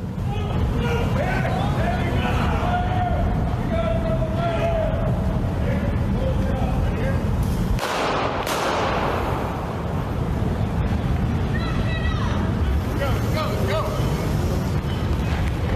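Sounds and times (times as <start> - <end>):
voices: 0.0 - 7.7, 9.8 - 15.7
heavy continuous noise: 0.0 - 15.7
gunshots in a street shooting: 7.8 - 9.8.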